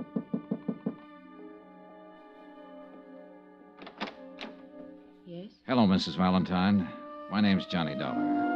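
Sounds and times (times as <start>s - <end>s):
knocking on a hotel room door: 0.0s - 1.0s
speech: 5.7s - 8.4s.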